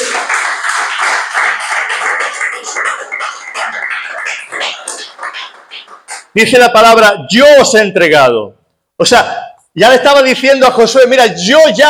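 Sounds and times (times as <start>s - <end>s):
crowd applauding: 0.0s - 6.4s
scattered voices: 2.1s - 6.4s
speech: 6.4s - 11.8s.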